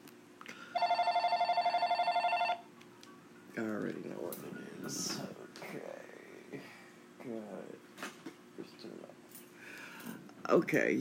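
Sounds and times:
faint hum: 0:00.0 - 0:10.9
phone ringing with a rapid electronic trill: 0:00.7 - 0:02.7
speech: 0:10.5 - 0:10.9.

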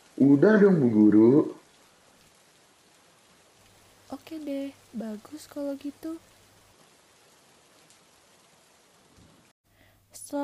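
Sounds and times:
light rain drizzle after a heavy downpour: 0:00.0 - 0:10.4
speech: 0:00.2 - 0:01.6, 0:04.4 - 0:06.3, 0:10.2 - 0:10.4.

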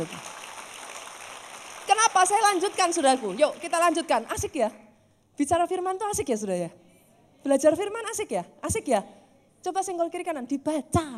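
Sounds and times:
speech: 0:00.0 - 0:00.3, 0:01.9 - 0:04.8, 0:05.4 - 0:06.8, 0:07.4 - 0:11.1
half-hearted scattered clapping from a crowd: 0:00.0 - 0:03.7.

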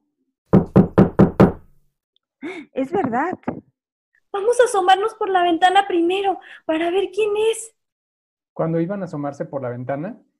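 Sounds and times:
loud knocking on a door at night: 0:00.5 - 0:01.7
speech: 0:02.8 - 0:03.6, 0:04.4 - 0:07.8, 0:08.6 - 0:10.3.

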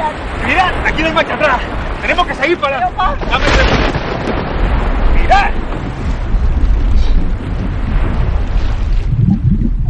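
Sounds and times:
churning waves of a stormy sea: 0:00.0 - 0:09.8
loud roar of wind on a stormy sea: 0:00.0 - 0:09.8
speech: 0:01.0 - 0:04.3, 0:05.3 - 0:05.8.

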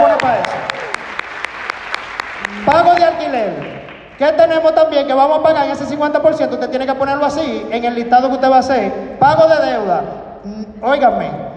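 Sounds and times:
group applauding: 0:00.0 - 0:04.4
speech: 0:03.4 - 0:11.5.

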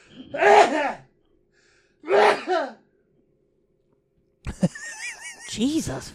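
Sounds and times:
person sneezing: 0:00.1 - 0:01.0, 0:02.1 - 0:02.8
speech: 0:00.3 - 0:01.0, 0:05.6 - 0:06.1
laughter: 0:04.5 - 0:05.9.

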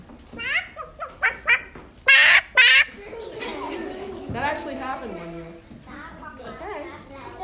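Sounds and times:
child imitating a chicken alarm call: 0:00.4 - 0:03.0
laughter: 0:02.6 - 0:04.7
speech: 0:04.3 - 0:05.7.

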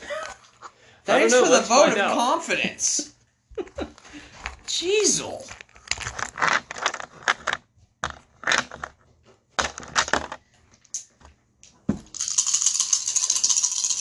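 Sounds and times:
speech: 0:01.1 - 0:03.9, 0:04.8 - 0:05.6
dice being shaken: 0:05.0 - 0:08.9, 0:12.1 - 0:13.9
dice rolling clatter: 0:05.4 - 0:08.9, 0:09.6 - 0:10.4, 0:12.1 - 0:13.9.

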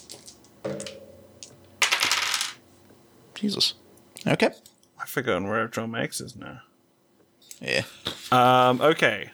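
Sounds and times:
dice including eight-sided dice clattering onto a hard tabletop during a game: 0:00.0 - 0:02.6
speech: 0:00.6 - 0:01.0, 0:03.4 - 0:06.7, 0:07.6 - 0:09.3.

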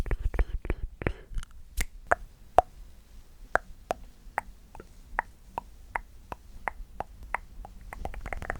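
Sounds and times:
mouth pops and tongue clicks: 0:00.2 - 0:02.7, 0:03.5 - 0:08.5
wet mouth clicks and smacks: 0:03.6 - 0:08.5.

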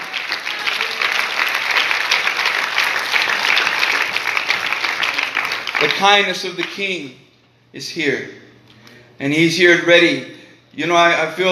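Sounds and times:
audience applause: 0:00.0 - 0:06.8
speech: 0:05.8 - 0:08.4, 0:09.2 - 0:11.5.

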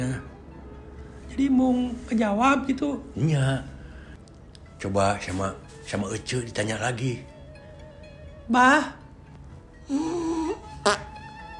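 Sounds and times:
speech: 0:00.1 - 0:00.3, 0:01.4 - 0:03.7, 0:04.8 - 0:07.3, 0:08.5 - 0:09.0, 0:09.9 - 0:11.1
drawn-out buzzy fart: 0:10.8 - 0:11.1.

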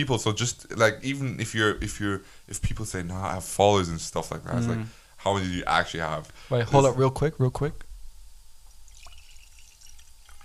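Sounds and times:
speech: 0:00.0 - 0:07.8
wine pouring into a glass: 0:08.8 - 0:10.4.

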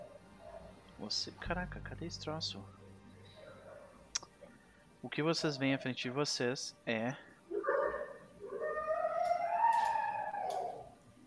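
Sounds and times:
speech: 0:01.0 - 0:02.8, 0:05.0 - 0:07.3
dog howling: 0:07.5 - 0:11.0.

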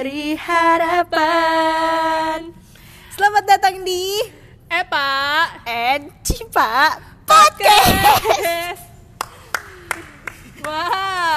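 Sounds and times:
speech: 0:00.0 - 0:02.6, 0:03.2 - 0:08.8, 0:10.6 - 0:11.3
sharp hand claps: 0:09.2 - 0:11.0.

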